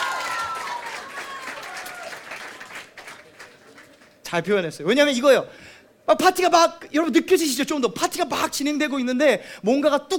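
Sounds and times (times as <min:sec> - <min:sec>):
audience clapping: 0:00.0 - 0:04.2
speech: 0:04.3 - 0:10.1.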